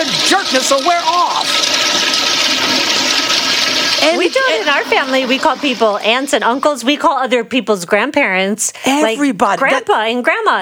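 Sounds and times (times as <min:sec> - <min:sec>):
toilet flushing: 0:00.0 - 0:07.2
speech: 0:00.3 - 0:02.1, 0:04.0 - 0:10.6.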